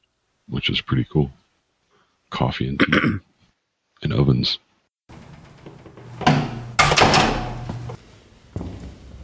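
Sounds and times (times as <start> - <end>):
speech: 0.5 - 1.4, 2.4 - 3.3, 4.0 - 5.2
rattling mechanical clunks of door lock: 5.2 - 8.0
door pulled shut with a heavy thud: 5.4 - 8.0.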